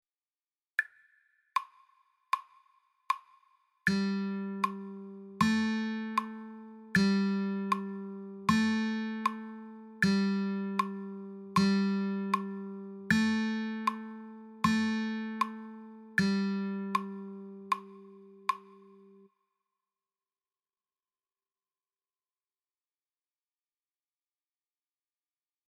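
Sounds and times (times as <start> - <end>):
guitar 3rd string G: 3.9 - 19.3.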